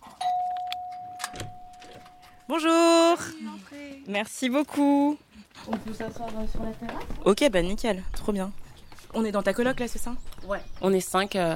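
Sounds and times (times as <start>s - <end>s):
electronic doorbell tone at a shared flat: 0.2s - 2.6s
speech: 2.5s - 11.5s.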